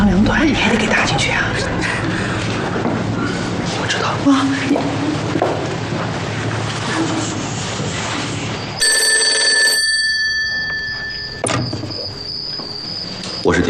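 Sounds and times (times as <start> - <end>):
noisy background: 0.0 - 8.8, 10.5 - 13.6
telephone ringing with a bright metallic bell tone: 8.8 - 13.6.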